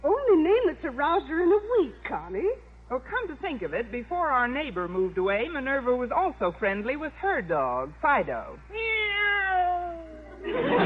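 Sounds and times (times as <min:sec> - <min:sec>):
speech: 0:00.9 - 0:09.0, 0:10.4 - 0:10.8
female pet cat meowing: 0:08.7 - 0:10.4
laughter: 0:10.2 - 0:10.8.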